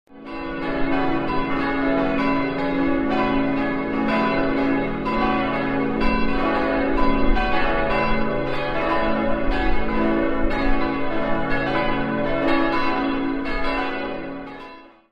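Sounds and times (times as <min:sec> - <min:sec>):
church bells ringing: 0:00.1 - 0:15.1.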